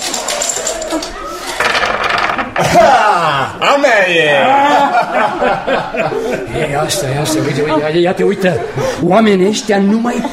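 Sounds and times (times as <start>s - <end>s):
dice clattering and rolling as they are tossed: 0.0s - 2.5s
laughter: 2.6s - 3.6s, 4.2s - 9.2s
speech: 3.5s - 10.3s.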